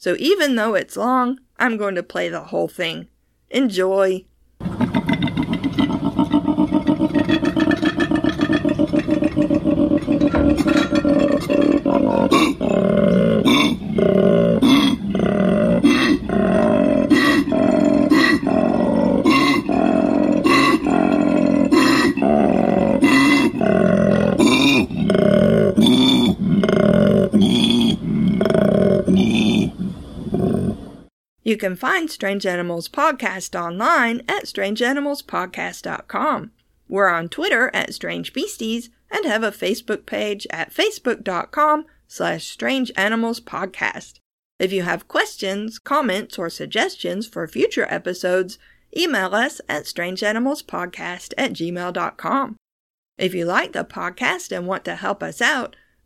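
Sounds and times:
speech: 0:00.0 - 0:04.3, 0:31.6 - 0:52.6, 0:53.2 - 0:56.0
male koala mating bellow: 0:04.6 - 0:30.8.

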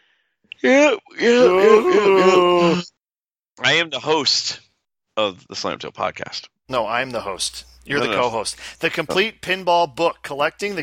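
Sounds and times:
person yawning loudly: 0:00.6 - 0:02.9
speech: 0:00.6 - 0:02.9, 0:03.6 - 0:04.6, 0:05.2 - 0:10.8.

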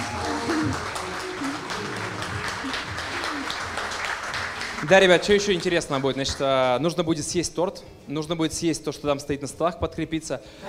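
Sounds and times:
room full of people applauding: 0:00.0 - 0:07.0
speech: 0:04.8 - 0:10.6.

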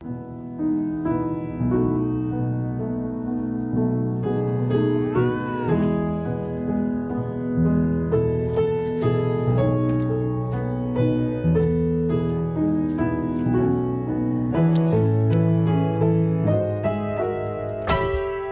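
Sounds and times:
loud fortissimo piano playing: 0:00.0 - 0:18.4
cat meowing: 0:04.8 - 0:06.3.

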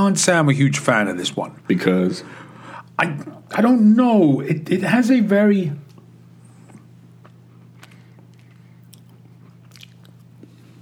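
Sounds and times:
speech: 0:00.0 - 0:05.8
chewing crunchy crystals in aged cheese: 0:06.6 - 0:10.8.

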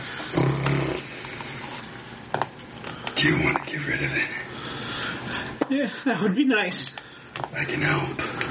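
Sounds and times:
monstrous demon dog snarling: 0:00.2 - 0:01.1
speech: 0:03.2 - 0:04.8, 0:05.7 - 0:08.4.

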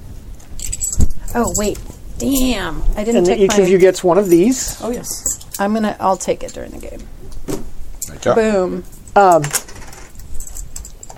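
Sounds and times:
metal coins clinking as they are handed out as pay: 0:00.5 - 0:06.9, 0:08.9 - 0:11.1
speech: 0:01.3 - 0:07.2, 0:08.2 - 0:09.7.

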